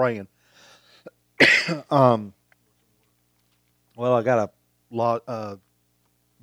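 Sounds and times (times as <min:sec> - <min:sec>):
speech: 0:00.0 - 0:00.4, 0:01.0 - 0:02.4, 0:04.0 - 0:05.7
person coughing: 0:01.4 - 0:02.0
throat clearing: 0:01.4 - 0:02.0.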